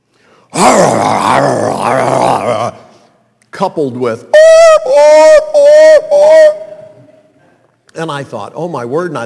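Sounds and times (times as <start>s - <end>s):
person's voice imitating a dogfight between a St. Bernard and another dog: 0.6s - 2.8s
speech: 3.6s - 5.4s, 8.0s - 9.2s.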